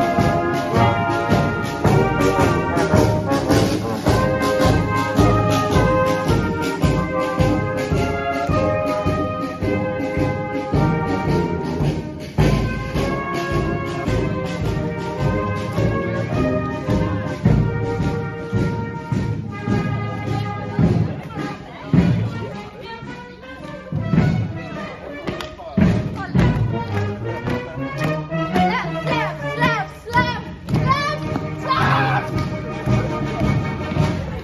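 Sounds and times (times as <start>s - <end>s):
crowd chatter: 0.0s - 34.4s
marching band playing in a parade: 0.0s - 34.4s
children's voices: 24.6s - 26.9s, 28.5s - 32.4s.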